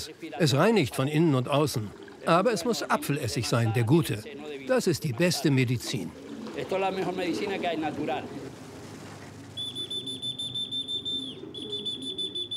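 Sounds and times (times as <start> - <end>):
speech: 0.0 - 8.5
busy outdoor noise: 0.0 - 12.5
person whistling a high-pitched note to train pigeons: 9.6 - 12.5.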